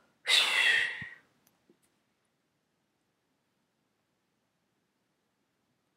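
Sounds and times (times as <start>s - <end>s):
forceful whooshing exhale through the mouth in a breathing exercise: 0.3s - 1.2s.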